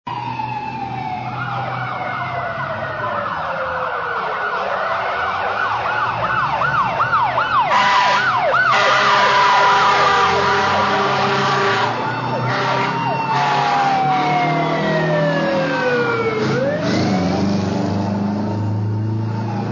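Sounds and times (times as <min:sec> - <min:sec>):
fire engine siren: 0:00.1 - 0:19.7.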